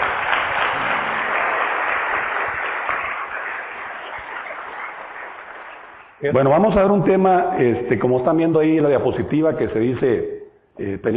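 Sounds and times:
audience applauding during a talk in Colombia: 0.0 - 6.2
speech: 6.2 - 11.1.

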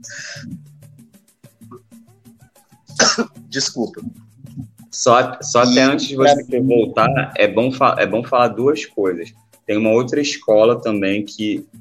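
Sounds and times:
speech: 0.0 - 0.6, 3.6 - 11.8
person coughing: 2.9 - 3.7.

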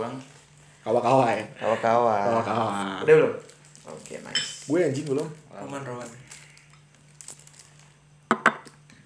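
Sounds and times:
speech: 0.0 - 6.2
plastic crinkling: 2.7 - 8.1.

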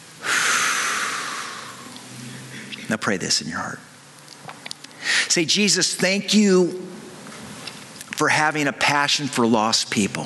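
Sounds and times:
deep exhale after a held breath during a guided breathing exercise: 0.2 - 2.7
speech: 2.9 - 3.9, 5.3 - 7.0, 8.2 - 10.2.

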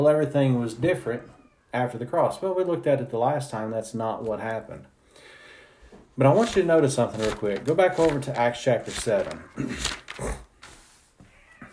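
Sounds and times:
speech: 0.0 - 4.9, 6.2 - 10.4
fighting cat yowling: 1.1 - 1.8.

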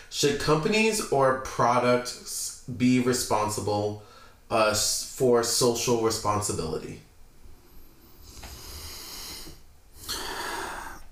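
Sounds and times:
speech: 0.1 - 7.1
heavy breathing into the microphone: 4.0 - 4.4, 8.0 - 11.1.

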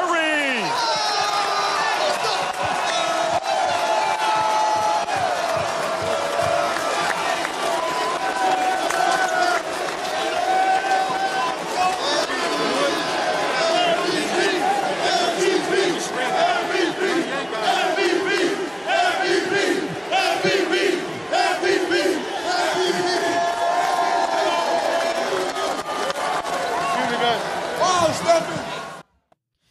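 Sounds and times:
crowd noise: 0.0 - 29.3
teammates chanting: 12.8 - 23.5.

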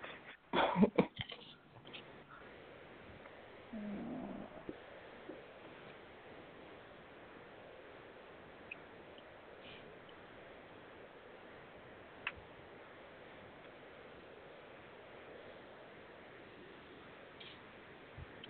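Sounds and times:
faint hiss: 0.0 - 18.4
cat purring: 3.6 - 5.5.

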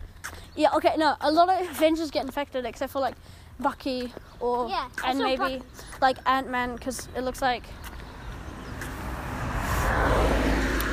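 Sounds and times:
speech: 0.6 - 7.9
car passing by: 8.1 - 10.9.

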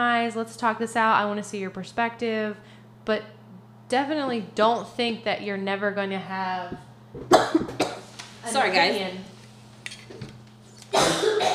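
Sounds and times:
speech: 0.0 - 9.3, 10.9 - 11.5
harsh coughing fit: 7.3 - 8.1, 10.9 - 11.5.

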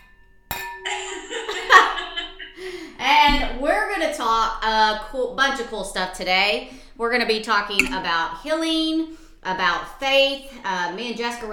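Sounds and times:
wine glass tapped in a toast: 0.0 - 1.2, 7.8 - 8.1
laughter: 0.8 - 3.0
speech: 4.0 - 11.5.

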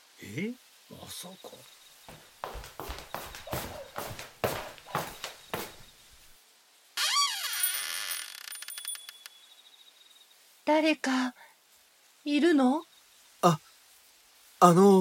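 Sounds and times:
speech: 0.2 - 2.8, 10.7 - 11.4, 12.2 - 13.6, 14.6 - 14.9
knocking on a door: 2.1 - 5.8.

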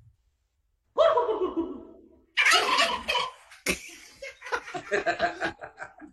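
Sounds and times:
turkey gobbling: 2.4 - 3.5
laughter: 3.7 - 6.1
speech: 4.9 - 5.6.

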